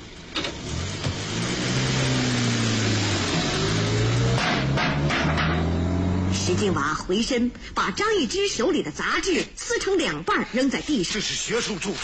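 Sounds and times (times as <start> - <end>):
car engine revving and accelerating away: 0.0 - 7.0
sharp clunks: 4.3 - 5.8
speech: 6.5 - 12.0.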